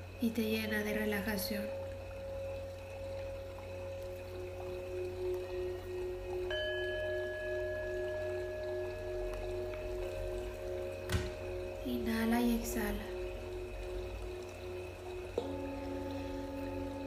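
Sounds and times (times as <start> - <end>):
small waterfall: 0.0 - 17.0
sustained ambient music tones: 0.0 - 17.0
speech: 0.2 - 1.8.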